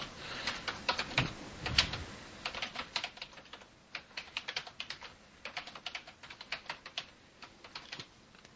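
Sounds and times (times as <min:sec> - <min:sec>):
typing on a computer keyboard: 0:00.4 - 0:08.1.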